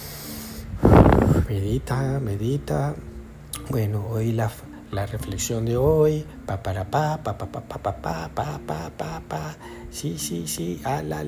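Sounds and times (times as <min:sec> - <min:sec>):
deep airy breath: 0:00.0 - 0:01.5, 0:09.6 - 0:09.9
quiet hum: 0:00.0 - 0:11.2
speech: 0:01.5 - 0:11.2.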